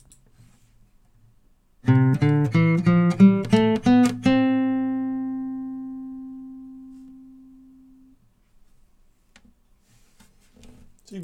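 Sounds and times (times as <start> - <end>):
guitar playing a C major scale: 1.8 - 8.2.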